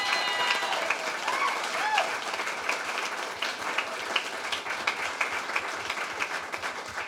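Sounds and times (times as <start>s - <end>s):
cheers and whoops: 0.0s - 2.3s
room full of people applauding: 0.0s - 7.0s.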